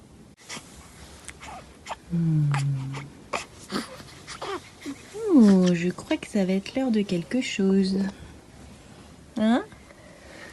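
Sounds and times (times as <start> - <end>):
sniffles and breathy noises: 0.4 - 5.3
newborn baby whimpering moan: 1.4 - 5.3
speech: 2.1 - 3.1, 5.4 - 8.2, 9.4 - 9.7.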